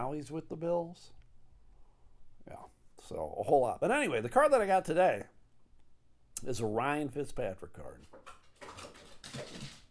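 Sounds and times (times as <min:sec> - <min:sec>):
speech: 0:00.0 - 0:01.2, 0:02.5 - 0:05.4, 0:06.4 - 0:08.4
female dog tumbling down a flight of stairs with thumps and scrabbling paws: 0:08.2 - 0:09.9.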